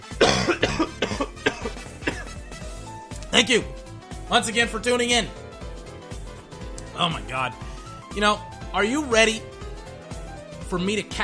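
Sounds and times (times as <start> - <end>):
harsh coughing: 0.1 - 2.6
speech: 3.4 - 5.4, 7.0 - 9.5, 10.7 - 11.2.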